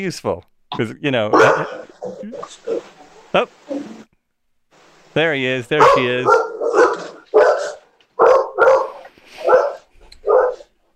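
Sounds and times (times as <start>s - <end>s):
speech: 0.0s - 4.0s, 5.2s - 6.9s
dog barking: 1.3s - 2.9s, 5.8s - 10.8s.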